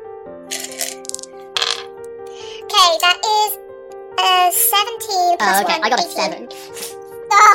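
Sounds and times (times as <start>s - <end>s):
dice clattering across a hard tabletop: 0.5s - 1.9s
speech: 2.8s - 3.6s, 4.2s - 7.5s.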